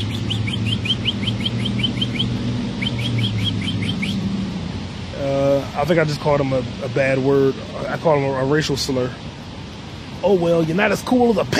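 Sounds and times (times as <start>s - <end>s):
small bird chirping: 0.0s - 4.3s
speech: 5.8s - 9.2s, 10.2s - 11.5s.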